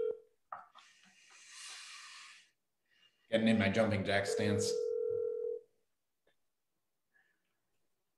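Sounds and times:
phone call to a med spa ringback tone: 0.0s - 0.2s, 4.3s - 5.6s
speech: 3.3s - 4.8s.

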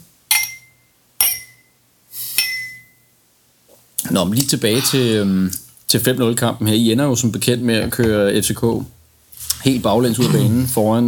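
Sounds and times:
glasses clinking together in a toast: 0.3s - 1.7s, 2.4s - 3.0s
speech: 4.1s - 9.0s, 9.6s - 11.0s.

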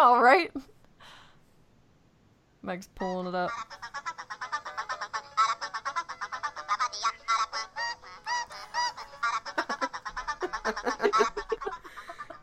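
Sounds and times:
speech: 0.0s - 0.8s, 2.6s - 4.1s, 10.7s - 11.4s
cartoon bird call played as a ringtone: 3.5s - 10.1s
laughter: 3.6s - 12.4s.

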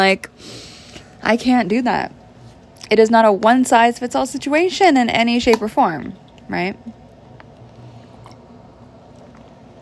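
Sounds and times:
speech: 0.0s - 0.6s, 1.2s - 2.2s, 2.9s - 7.0s
low hum: 0.0s - 9.8s
person sipping water: 7.4s - 9.6s.

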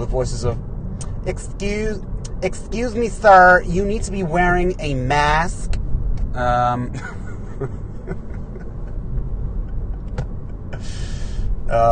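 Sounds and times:
car engine and road noise pulling into a car wash: 0.0s - 11.9s
speech: 0.1s - 8.2s, 11.7s - 11.9s
laughter: 6.9s - 10.8s
sharp clicks and knocks: 9.9s - 10.6s.

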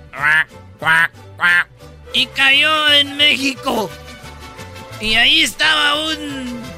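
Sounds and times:
duck quacking: 0.1s - 1.7s
speech: 0.2s - 4.1s, 5.0s - 6.7s.

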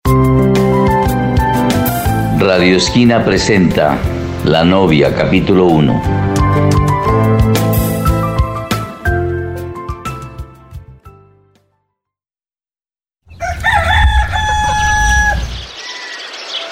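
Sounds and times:
full layered music: 0.1s - 11.4s
speech: 2.4s - 6.8s
birds singing at dawn: 13.3s - 16.7s
rooster crowing at dawn: 13.3s - 16.7s.

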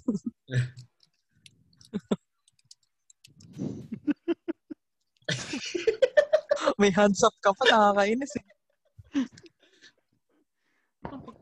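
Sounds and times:
speech: 0.5s - 0.8s, 6.8s - 8.5s
keyboard typing: 0.8s - 3.6s
laughter: 3.7s - 6.8s.

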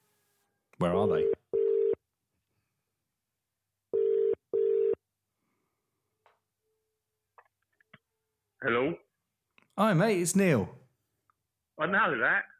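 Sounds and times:
speech: 0.8s - 1.4s, 9.8s - 10.8s, 11.8s - 12.5s
telephone ringing tone heard from the caller's end: 1.2s - 2.0s, 4.0s - 5.0s.

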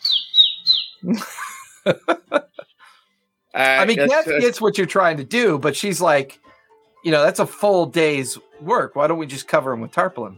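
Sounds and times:
pigeon squawking with high chirps and harsh raspy calls: 0.0s - 1.1s
laughter: 1.0s - 2.8s, 3.6s - 4.5s
speech: 1.1s - 2.2s, 3.6s - 10.3s.

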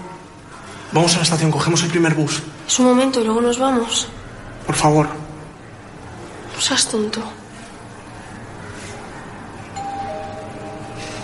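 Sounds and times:
steady low hum indoors: 0.0s - 11.2s
speech: 0.9s - 5.2s, 6.6s - 7.4s
doorbell two-note ding-dong chime indoors: 9.8s - 11.2s.

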